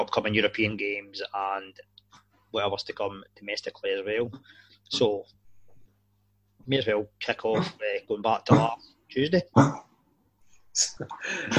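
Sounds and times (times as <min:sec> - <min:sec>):
speech: 0:00.0 - 0:01.9, 0:02.5 - 0:05.4, 0:06.6 - 0:09.9, 0:10.8 - 0:11.5
dog coughing: 0:07.5 - 0:07.8, 0:09.6 - 0:09.9, 0:11.0 - 0:11.5.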